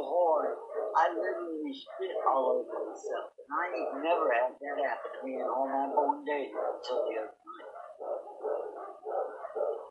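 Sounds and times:
dog barking outside: 0.1s - 3.5s, 4.8s - 9.9s
speech: 1.0s - 7.4s.

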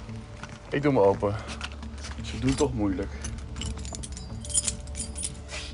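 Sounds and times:
speech: 0.7s - 1.6s, 2.4s - 3.3s
bunch of keys jangling: 1.7s - 5.7s.

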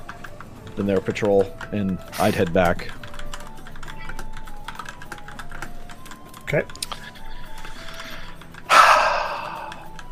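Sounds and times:
speech: 0.8s - 3.0s, 6.5s - 6.8s
heavy nervous breathing: 6.9s - 10.1s.

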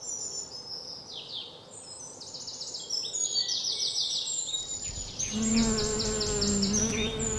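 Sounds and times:
bright bird chirps: 0.0s - 7.3s
bees buzzing around yellow flowers: 4.8s - 7.3s.

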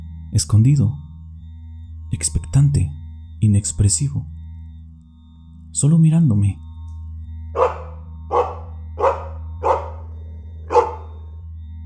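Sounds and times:
speech: 0.3s - 1.0s, 2.1s - 4.4s, 5.8s - 6.6s
dog barking: 7.6s - 11.3s.

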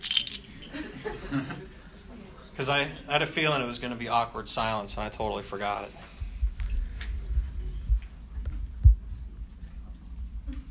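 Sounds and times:
keys jangling as they are tossed toward an audience: 0.0s - 0.8s
laughter: 0.6s - 2.5s
speech: 2.6s - 6.1s
faint murmuring voices: 6.8s - 10.6s.

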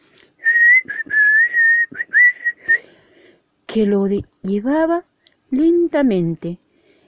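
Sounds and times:
man whistling a short clear tune: 0.4s - 2.8s
speech: 3.7s - 6.6s.

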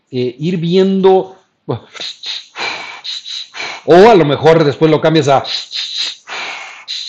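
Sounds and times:
speech: 0.1s - 2.4s, 3.9s - 5.8s
person doing sharp forceful exhalations in a breathing rhythm: 1.9s - 4.0s, 5.4s - 7.0s.

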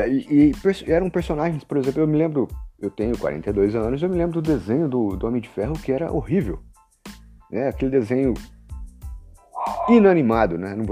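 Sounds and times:
speech: 0.0s - 8.6s, 9.9s - 10.9s
dog barking: 9.5s - 10.1s.

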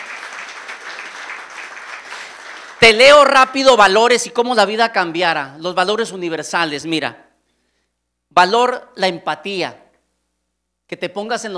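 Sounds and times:
audience applause: 0.0s - 2.9s
speech: 2.8s - 7.2s, 8.3s - 9.8s, 10.9s - 11.5s.

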